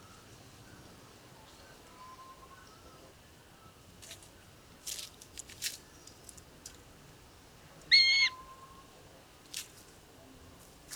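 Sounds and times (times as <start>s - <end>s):
faint noisy sound: 0.0s - 10.9s
Eurasian jay Garrulus glandarius harsh nasal call: 7.9s - 8.4s.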